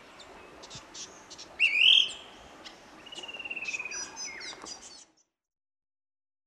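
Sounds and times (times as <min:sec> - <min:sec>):
fan-tailed berrypecker calling in Papua New Guinea: 0:00.2 - 0:05.2.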